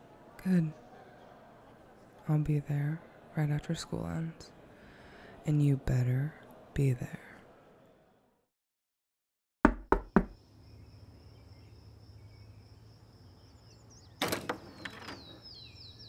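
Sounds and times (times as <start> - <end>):
speech: 0.4 - 0.8, 2.3 - 4.6, 5.4 - 7.3
firm knocks on a door: 9.6 - 10.4
short clattering burst of a door being handled: 14.2 - 15.4.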